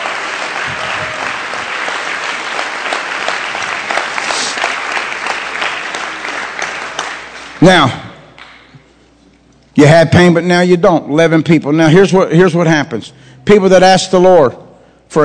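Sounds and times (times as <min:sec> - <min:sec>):
audience applauding as praise to the Lord: 0:00.0 - 0:08.6
speech: 0:07.6 - 0:08.0, 0:09.8 - 0:15.2.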